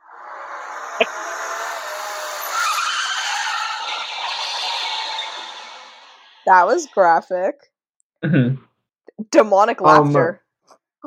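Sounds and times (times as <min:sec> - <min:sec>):
car tires skidding and squealing: 0:00.0 - 0:06.9
speech: 0:01.0 - 0:01.4, 0:06.5 - 0:10.4.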